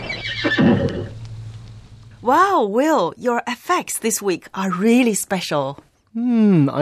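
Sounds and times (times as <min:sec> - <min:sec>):
horse whinnying: 0:00.0 - 0:01.2
speech: 0:00.4 - 0:01.2, 0:02.2 - 0:06.8.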